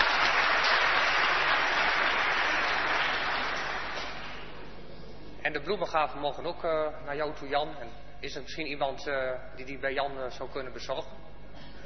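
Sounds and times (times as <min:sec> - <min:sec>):
audience applauding during a church service: 0:00.0 - 0:04.6
speech: 0:05.6 - 0:11.2.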